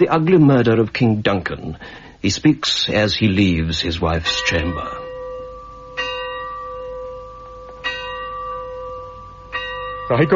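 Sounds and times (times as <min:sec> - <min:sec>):
speech: 0:00.0 - 0:05.0, 0:10.1 - 0:10.3
single bell tolling a knell: 0:04.2 - 0:10.3.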